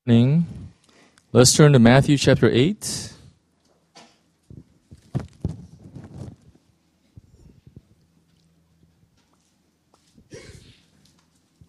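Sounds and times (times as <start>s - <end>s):
speech: 0.0s - 0.6s, 1.3s - 3.1s
shuffling noises: 3.7s - 11.6s
sneeze: 10.3s - 10.9s.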